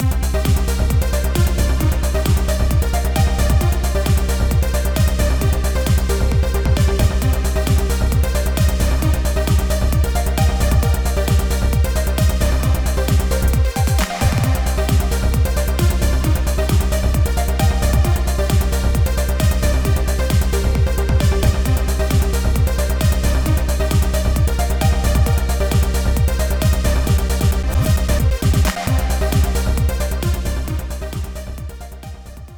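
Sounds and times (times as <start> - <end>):
trance EDM: 0.0 - 32.5.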